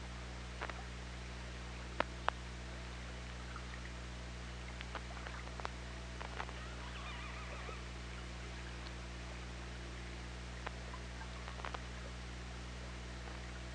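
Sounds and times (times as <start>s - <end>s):
steady low hum: 0.0s - 13.7s
orca wavering warbling tonal call underwater: 6.5s - 8.8s.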